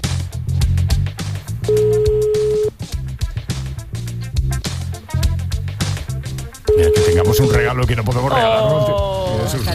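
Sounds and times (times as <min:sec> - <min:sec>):
busy music: 0:00.0 - 0:09.7
telephone ringback tone during a call to Motril, Granada, Spain: 0:01.7 - 0:02.7, 0:06.7 - 0:07.7
speech: 0:07.4 - 0:09.7.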